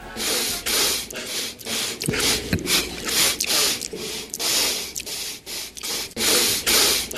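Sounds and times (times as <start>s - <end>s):
man sniffing sharply through his nose: 0.0s - 7.1s.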